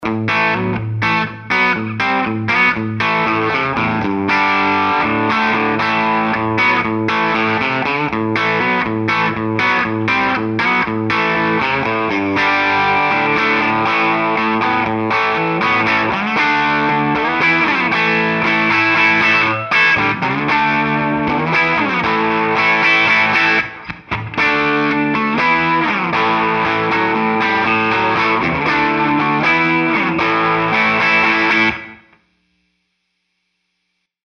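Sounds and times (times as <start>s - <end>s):
Les Paul electric guitar playing mild crunch rhythm: 0.0s - 32.3s.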